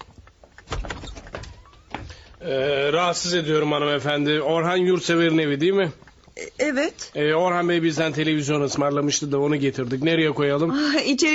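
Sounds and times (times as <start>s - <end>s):
clicks, knocks and rattling of the door latch and frame: 0.2s - 2.4s
door being opened at home for visitors: 0.2s - 2.5s
speech: 2.4s - 11.3s.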